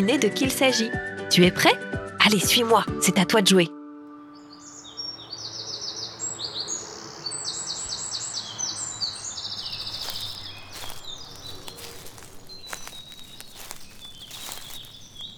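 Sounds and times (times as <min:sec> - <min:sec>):
speech: 0:00.0 - 0:03.8
birds singing and chirping in spring fields: 0:04.4 - 0:15.3
soft footsteps or rustling: 0:09.6 - 0:15.3.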